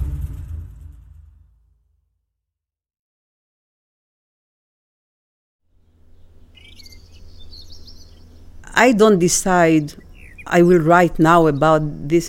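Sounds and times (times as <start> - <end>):
low steady outdoor rumble: 0.0 - 1.7, 5.8 - 12.2
birds chirping: 5.9 - 12.2
speech: 8.8 - 12.2.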